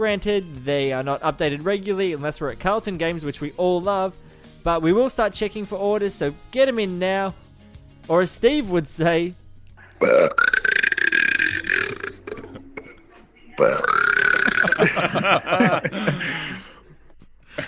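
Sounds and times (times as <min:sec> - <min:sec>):
speech: 0:00.0 - 0:07.4, 0:08.0 - 0:09.4, 0:10.0 - 0:10.5, 0:13.6 - 0:14.0, 0:14.8 - 0:16.5
long resonant burps: 0:09.8 - 0:15.2
laughter: 0:12.4 - 0:17.6.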